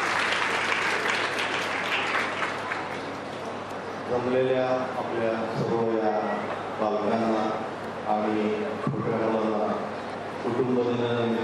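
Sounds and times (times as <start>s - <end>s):
audience applause at a family day gathering: 0.0s - 3.4s
speech: 4.1s - 11.4s.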